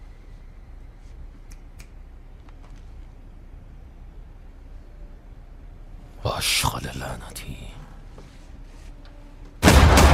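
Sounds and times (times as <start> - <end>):
speech: 6.4 - 7.8
gunshots: 9.6 - 10.1.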